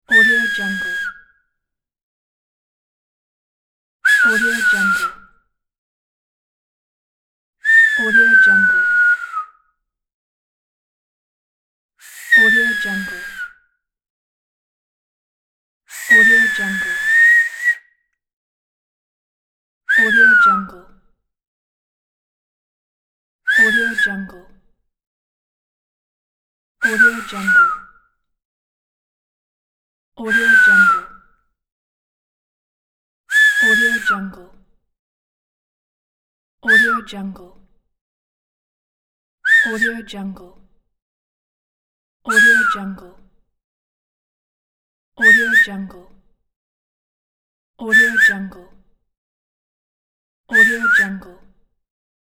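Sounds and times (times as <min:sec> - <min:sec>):
finger whistling: 0:00.1 - 0:01.4, 0:04.1 - 0:05.4, 0:07.6 - 0:09.7, 0:12.0 - 0:13.7, 0:15.9 - 0:18.1, 0:19.9 - 0:20.7, 0:23.5 - 0:24.2, 0:26.8 - 0:28.0, 0:30.3 - 0:31.3, 0:33.3 - 0:34.3, 0:36.7 - 0:37.0, 0:39.5 - 0:40.0, 0:42.3 - 0:42.8, 0:45.2 - 0:45.8, 0:48.0 - 0:48.6, 0:50.5 - 0:51.2.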